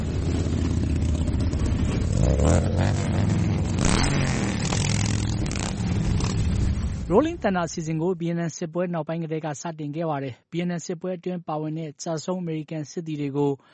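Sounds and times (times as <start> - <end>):
thousands of motorcycles rumbling through a city in a rally: 0.0 - 7.4
speech: 7.1 - 13.7.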